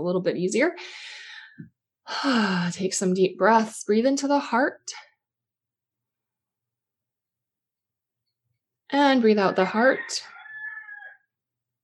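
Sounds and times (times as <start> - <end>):
speech: 0.0 - 5.0, 8.9 - 10.4
rooster crowing: 9.5 - 11.3.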